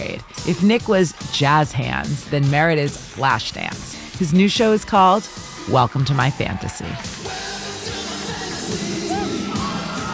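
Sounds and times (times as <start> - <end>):
speech: 0.2 - 7.1
large crowd of women screaming and cheering in a big hall: 5.2 - 10.1.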